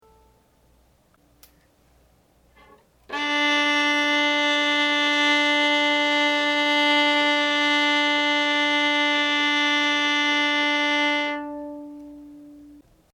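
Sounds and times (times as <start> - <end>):
viola D string being tuned: 2.6 - 12.8.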